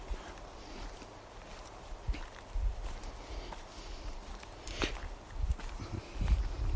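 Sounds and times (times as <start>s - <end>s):
footsteps on a path full of shards among broadleaf deciduous trees: 0.0s - 6.7s.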